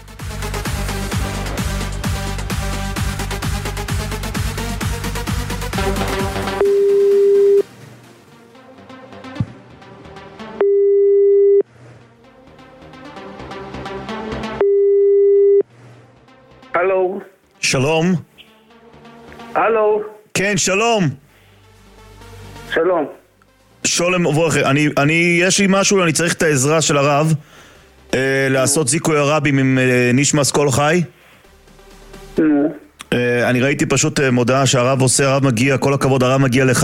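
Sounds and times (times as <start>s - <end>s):
music: 0.0s - 36.8s
telephone ringback tone of a live on-air phone call: 6.6s - 7.7s, 10.6s - 11.7s, 14.6s - 15.6s
speech: 17.8s - 18.3s, 19.6s - 21.2s, 22.7s - 23.2s, 23.8s - 31.2s, 32.4s - 36.8s.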